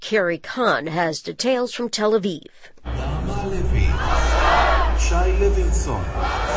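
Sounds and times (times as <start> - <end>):
speech: 0.1 - 4.2, 5.0 - 6.5
large crowd screaming and shouting after hostage names: 2.9 - 6.5.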